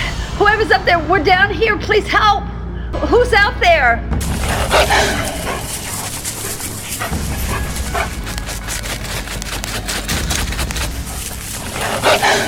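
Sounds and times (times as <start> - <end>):
speech: 0.4 - 5.4
wolves barking and yipping outside: 4.2 - 12.4.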